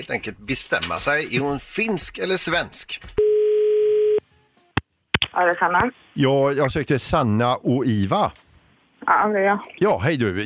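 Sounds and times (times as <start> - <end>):
speech: 0.0 - 3.2, 5.4 - 8.4, 9.0 - 10.4
telephone ringback tone of an outgoing call: 3.2 - 4.2.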